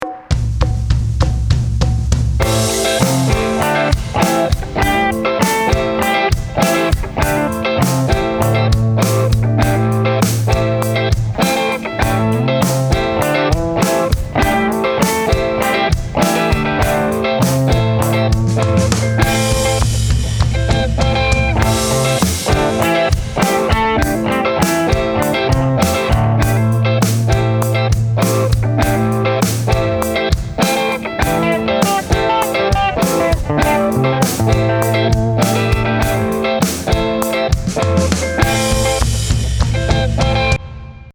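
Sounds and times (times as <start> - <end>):
backing track in A minor with octaves: 0.0 - 40.6.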